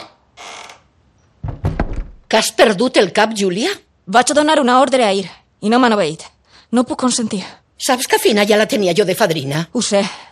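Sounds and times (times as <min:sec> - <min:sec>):
door hinges creaking: 0:00.0 - 0:02.3
door closing with solid knocking thuds: 0:01.4 - 0:02.3
speech: 0:02.3 - 0:10.2.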